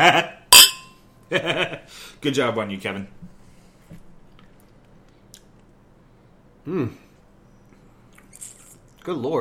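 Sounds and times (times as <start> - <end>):
speech: 0.0 - 0.4, 1.3 - 3.3, 6.6 - 7.0, 9.0 - 9.4
glasses clinking in a toast: 0.6 - 1.0.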